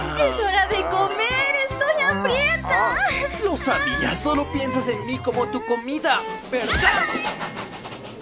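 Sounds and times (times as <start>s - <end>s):
speech: 0.2s - 1.2s, 2.5s - 7.7s
train rumbling through a railway station: 6.2s - 8.2s.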